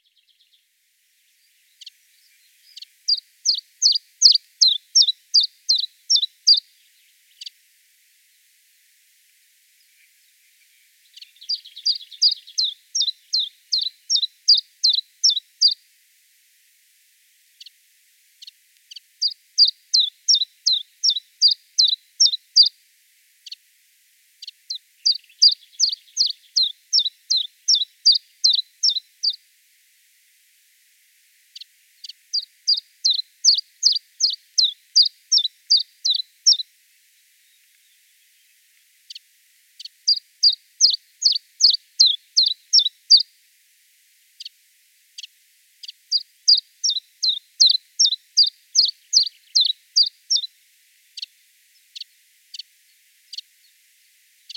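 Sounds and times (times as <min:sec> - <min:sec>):
common chiffchaff singing: 0:01.4 - 0:07.6, 0:09.8 - 0:15.8, 0:18.9 - 0:22.7, 0:24.4 - 0:29.4, 0:31.6 - 0:36.7, 0:39.8 - 0:43.3, 0:45.8 - 0:50.5.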